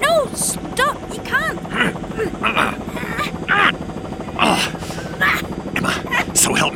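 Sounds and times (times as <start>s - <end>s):
helicopter engine and rotor drone: 0.0s - 6.7s
people shouting: 1.0s - 3.8s.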